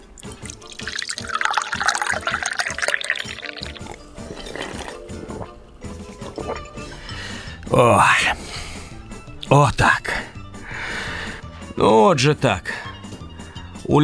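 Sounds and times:
vodka pouring into a glass: 0.2s - 5.6s
speech: 7.7s - 8.5s, 9.5s - 10.0s, 11.8s - 12.8s.

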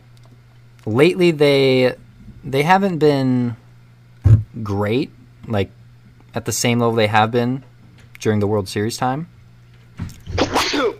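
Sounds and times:
speech: 0.8s - 3.6s, 4.6s - 9.4s, 10.0s - 10.9s
person sneezing: 10.3s - 10.9s.

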